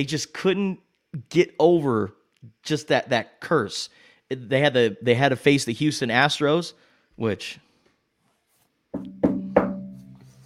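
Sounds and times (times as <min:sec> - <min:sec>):
speech: 0:00.0 - 0:07.6
sharp knocks with a short hollow ring: 0:09.0 - 0:10.2.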